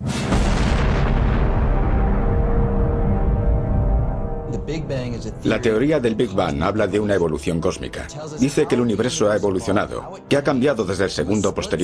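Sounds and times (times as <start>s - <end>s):
huge deep explosion rumbling: 0.0s - 6.8s
speech: 4.7s - 11.8s.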